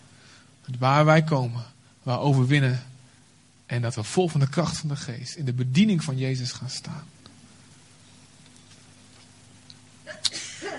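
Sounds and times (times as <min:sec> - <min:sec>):
faint hum: 0:00.0 - 0:10.7
speech: 0:00.7 - 0:02.9, 0:03.7 - 0:07.2
person sneezing: 0:10.1 - 0:10.7.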